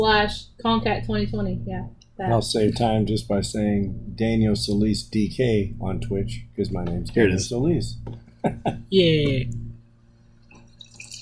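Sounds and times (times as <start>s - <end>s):
speech: 0.0s - 9.7s
low steady hum: 0.0s - 11.1s
water dripping: 10.4s - 11.1s.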